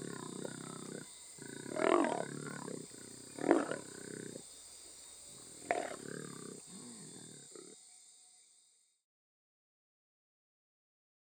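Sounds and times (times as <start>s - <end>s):
jaguar rasping roar calls: 0.0s - 4.4s, 5.6s - 7.7s.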